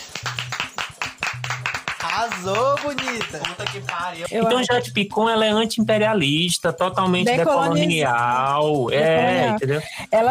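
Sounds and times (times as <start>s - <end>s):
small group applauding: 0.0s - 4.6s
speech: 2.2s - 10.2s.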